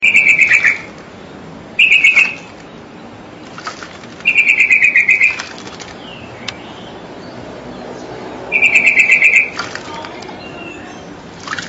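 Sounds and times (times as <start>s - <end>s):
Nias hill myna calling: 0.0s - 1.0s, 1.8s - 2.6s, 4.2s - 5.6s, 8.5s - 11.3s.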